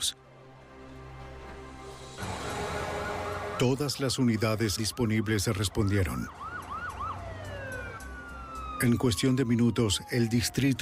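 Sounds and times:
low rumble of traffic: 0.4 - 10.5
multiple police sirens wailing: 2.2 - 10.8
speech: 3.6 - 6.5, 8.8 - 10.8.

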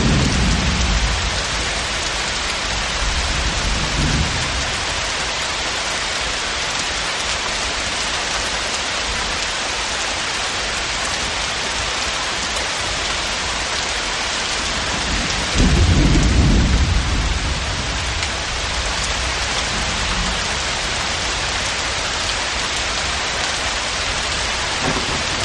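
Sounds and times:
low thunder rumbles: 0.0 - 5.0, 14.7 - 22.2, 24.1 - 25.4
steady dense rainfall: 0.0 - 25.4.

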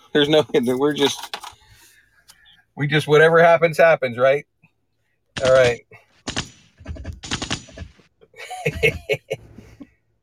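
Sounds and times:
speech: 0.1 - 1.4, 2.8 - 4.5, 5.4 - 6.0, 8.6 - 9.2
rapid gunfire: 5.4 - 8.1
laugh-like vocal sounds: 8.3 - 10.0.

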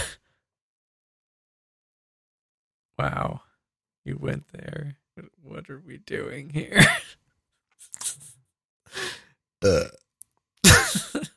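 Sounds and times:
speech: 3.0 - 7.2, 8.9 - 10.0
loud burps: 9.6 - 10.0.

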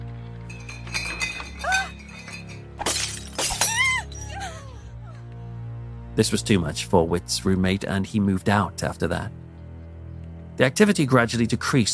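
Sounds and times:
tinkling glass shards scattering and settling: 0.4 - 4.4
wine bottles smashing against a wall: 0.5 - 4.4
speech: 6.2 - 9.4, 10.6 - 11.9.

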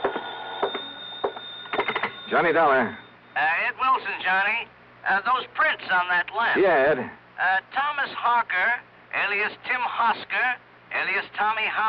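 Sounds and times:
telephone ringing with steady high-pitched ring: 0.0 - 4.2
speech: 2.3 - 11.8.

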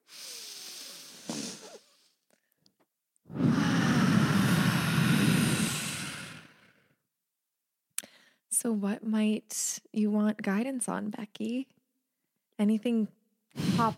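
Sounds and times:
group taking a deep breath together: 0.0 - 2.6, 3.3 - 6.9, 13.5 - 13.9
speech: 8.6 - 11.8, 12.6 - 13.9.

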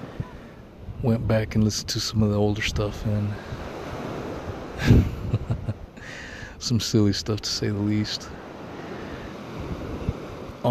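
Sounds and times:
wind buffeting the microphone: 0.0 - 6.0, 8.2 - 10.6
ocean surf washing against the shore on the Gulf Coast of Florida: 0.0 - 10.6
speech: 1.0 - 3.7, 4.8 - 5.1, 6.1 - 8.4
laughter: 4.8 - 5.9.

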